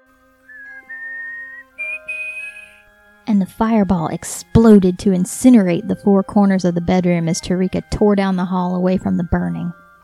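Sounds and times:
soft four-tone whistle: 0:00.4 - 0:02.9
speech: 0:03.3 - 0:09.8.

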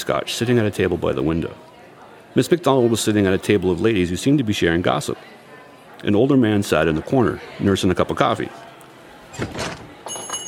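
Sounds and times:
speech: 0:00.0 - 0:01.7, 0:02.3 - 0:05.4, 0:06.0 - 0:08.7, 0:09.4 - 0:09.8
front door opening: 0:09.2 - 0:10.4.

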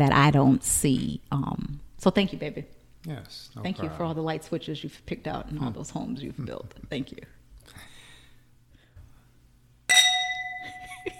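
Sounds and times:
speech: 0:00.0 - 0:07.9
glasses clinking together in a toast: 0:09.9 - 0:11.1.

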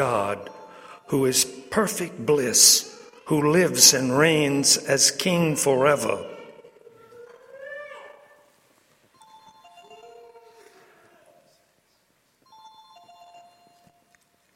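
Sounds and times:
speech: 0:00.0 - 0:06.4
cell phone ringtone playing a bright electronic melody: 0:09.2 - 0:10.5, 0:12.4 - 0:14.1.

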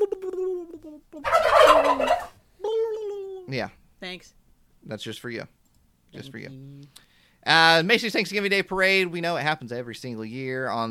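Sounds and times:
turkey gobbling: 0:01.2 - 0:02.4
speech: 0:03.5 - 0:10.8.

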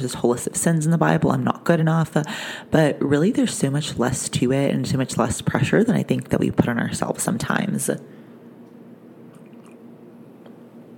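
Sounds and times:
speech: 0:00.0 - 0:08.2
steady low hum: 0:00.0 - 0:10.9
sipping coffee from a cup: 0:09.3 - 0:09.8.

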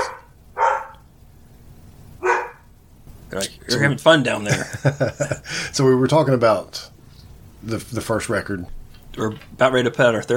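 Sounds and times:
dog barking sharp woofs: 0:00.0 - 0:01.0, 0:02.2 - 0:02.7
speech: 0:03.3 - 0:06.9, 0:07.6 - 0:10.3
laughter: 0:04.3 - 0:05.8.

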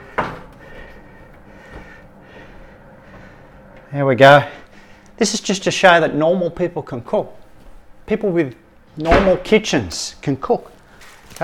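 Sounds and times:
faint hum: 0:00.0 - 0:11.4
speech: 0:03.9 - 0:04.6, 0:05.2 - 0:07.4, 0:08.1 - 0:11.4
oven door pushed closed with a sharp thump: 0:09.0 - 0:09.6.

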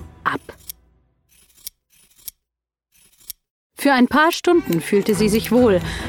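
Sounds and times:
scissors snipping hair: 0:00.3 - 0:02.4, 0:03.0 - 0:03.4, 0:04.1 - 0:05.6
speech: 0:03.8 - 0:06.0.

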